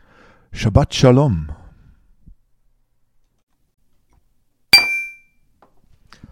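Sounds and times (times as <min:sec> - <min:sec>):
speech: 0:00.5 - 0:01.6
glasses clinking in a toast: 0:04.8 - 0:05.3.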